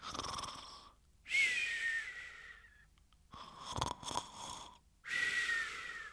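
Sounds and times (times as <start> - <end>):
human voice performing wheezing snores with a whistling edge: 0.0 - 1.0, 3.4 - 6.1.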